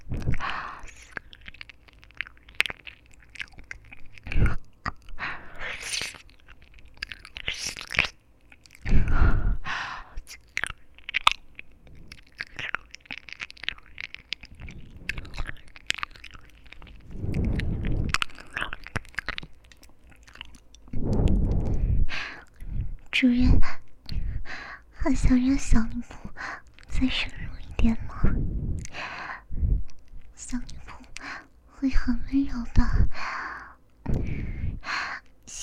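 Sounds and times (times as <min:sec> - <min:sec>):
soft breathing: 0:00.0 - 0:01.3, 0:04.3 - 0:06.0, 0:08.8 - 0:10.3, 0:14.4 - 0:15.8, 0:16.7 - 0:18.6, 0:20.9 - 0:25.2, 0:25.8 - 0:35.3
person biting and chewing a crunchy snack: 0:00.0 - 0:09.4, 0:10.2 - 0:22.7
speech: 0:23.2 - 0:23.8, 0:25.1 - 0:26.2, 0:27.0 - 0:28.0.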